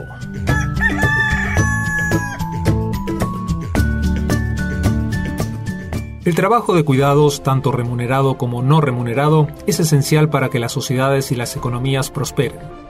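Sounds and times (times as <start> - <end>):
loud upbeat music with steady percussive beat: 0.0 - 8.4
rooster crowing: 0.4 - 2.7
speech: 6.3 - 12.8.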